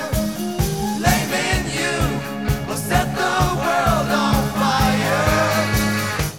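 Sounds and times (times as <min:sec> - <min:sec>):
calliope whistle-like tones in a rock band mix: 0:00.0 - 0:03.4
drums thumping: 0:00.0 - 0:06.3
rock band playing: 0:00.0 - 0:06.3.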